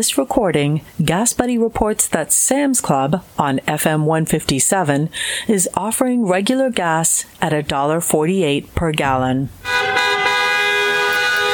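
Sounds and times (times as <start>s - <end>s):
speech: 0.0s - 10.1s
car horns honking around a medical center to show appreciation: 9.6s - 11.5s.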